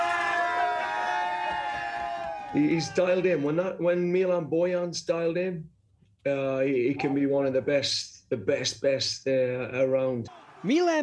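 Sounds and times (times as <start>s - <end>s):
teammates cheering and chanting on a team bus: 0.0s - 3.5s, 10.3s - 11.0s
speech: 2.5s - 11.0s.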